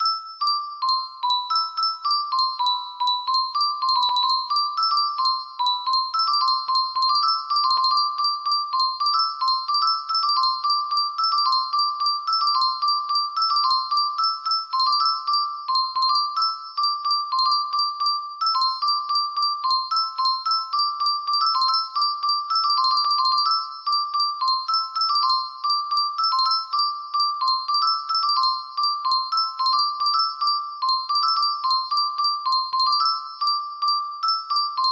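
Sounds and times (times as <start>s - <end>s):
high-pitched music box melody: 0.0s - 34.9s.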